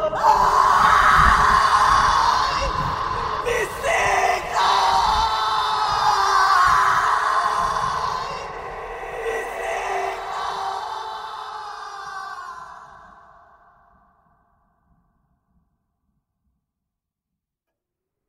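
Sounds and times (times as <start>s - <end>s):
woman's terrifying drawn-out wailing scream: 0.2s - 13.3s.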